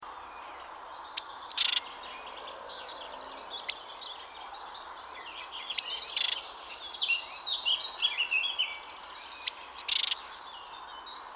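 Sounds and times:
other birds twittering busily: 0.4s - 11.3s
great tit Parus major calls: 1.1s - 1.9s, 3.6s - 4.2s, 5.7s - 6.7s, 9.4s - 10.2s.

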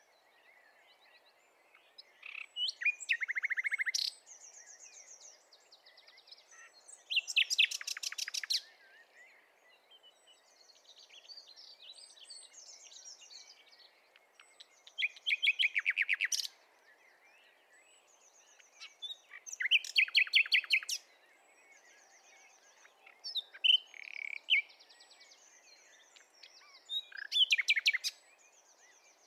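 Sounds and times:
Common nightingale Luscinia megarhynchos song: 0.0s - 29.2s
faint background hiss: 0.0s - 29.2s.

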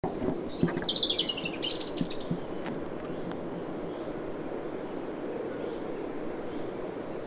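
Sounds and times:
faint background rumble: 0.0s - 7.2s
European robin Erithacus rubecula giving a thin high warbled phrase: 0.6s - 3.1s.

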